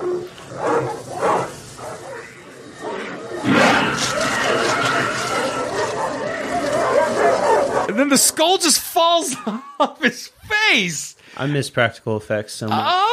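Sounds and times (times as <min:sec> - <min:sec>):
dogs barking frantically in a film scene: 0:00.0 - 0:08.0
speech: 0:08.1 - 0:13.1
laughter: 0:09.1 - 0:10.4.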